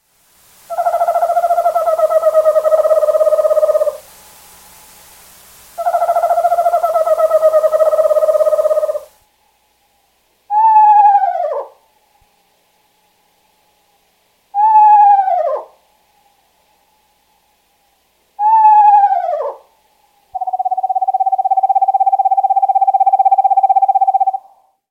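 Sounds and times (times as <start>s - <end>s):
screech owl: 0.7s - 4.1s, 5.8s - 9.2s, 10.5s - 11.8s, 14.5s - 15.8s, 18.4s - 19.7s, 20.3s - 24.8s.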